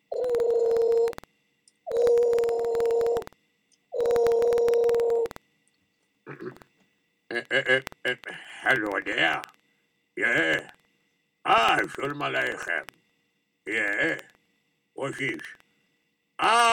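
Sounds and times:
telephone ringing in buzzing bursts: 0:00.1 - 0:01.2, 0:01.9 - 0:03.3, 0:04.0 - 0:05.3
speech: 0:07.5 - 0:09.5, 0:11.8 - 0:13.0, 0:13.7 - 0:14.3, 0:15.0 - 0:15.6, 0:16.4 - 0:16.7.

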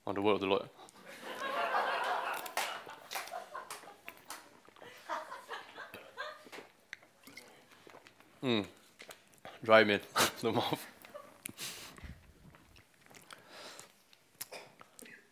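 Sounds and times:
speech: 0:00.1 - 0:00.9, 0:08.4 - 0:08.8, 0:09.6 - 0:10.9
laughter: 0:01.0 - 0:06.7
speaker sipping water during a Bible reading: 0:06.9 - 0:09.6, 0:11.0 - 0:15.3
voiced exhale after drinking: 0:13.3 - 0:13.9.

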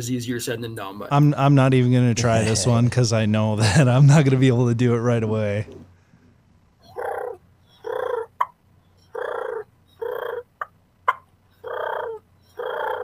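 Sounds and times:
speech: 0:00.0 - 0:05.8
diaphragm turkey call raspy yelps: 0:06.8 - 0:13.0.

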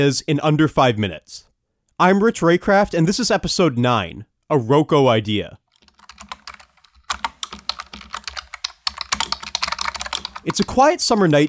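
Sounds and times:
speech: 0:00.0 - 0:05.6, 0:10.4 - 0:11.4
typing on a computer keyboard: 0:05.7 - 0:11.4.

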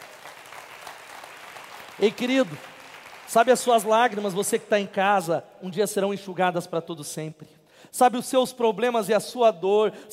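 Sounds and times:
congregation applauding after a preacher's words: 0:00.0 - 0:04.5
speech: 0:02.0 - 0:02.7, 0:03.3 - 0:10.1.

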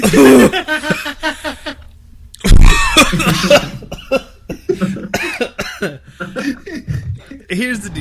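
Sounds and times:
coughing and choking gags after drinking: 0:00.0 - 0:01.0, 0:02.4 - 0:07.4.

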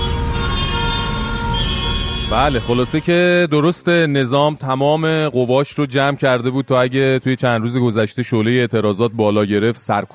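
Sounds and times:
protesters' car horns honking in Azadi Square, Kerman: 0:00.0 - 0:03.3
low rumble of crowded street traffic: 0:00.0 - 0:03.4
speech: 0:02.3 - 0:10.1.

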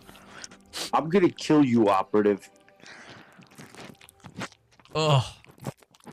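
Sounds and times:
man chewing a burger: 0:00.0 - 0:00.9, 0:02.5 - 0:06.1
speech: 0:00.9 - 0:02.6, 0:05.0 - 0:05.4.

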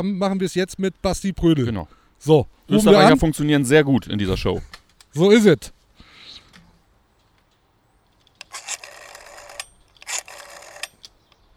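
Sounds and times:
speech: 0:00.0 - 0:05.8
faint noise: 0:00.0 - 0:11.5
telephone ringing with an incoming call: 0:08.5 - 0:11.0.

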